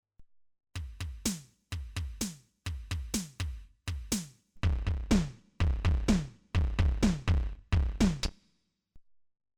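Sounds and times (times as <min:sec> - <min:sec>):
electronic kick and tom beat on hand percussion pad: 0:00.8 - 0:08.4.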